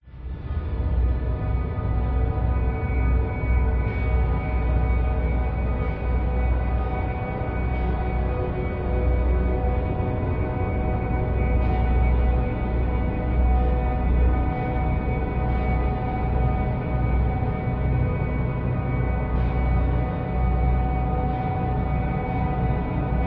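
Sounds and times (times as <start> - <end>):
dark subtle tense horror drone atmosphere: 0.0 - 23.2.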